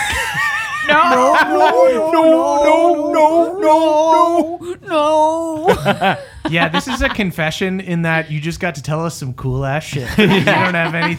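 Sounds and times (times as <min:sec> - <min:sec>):
laughter: 0:00.0 - 0:07.5, 0:10.0 - 0:11.1
person imitating a dog with howl-like vocal sounds: 0:00.8 - 0:06.2
speech: 0:00.9 - 0:11.1.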